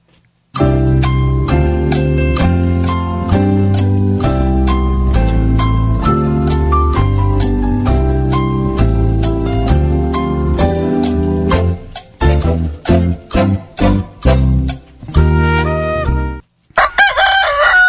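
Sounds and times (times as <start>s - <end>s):
rhythmic music with a steady beat: 0.6s - 16.4s
rooster crowing: 16.7s - 17.8s.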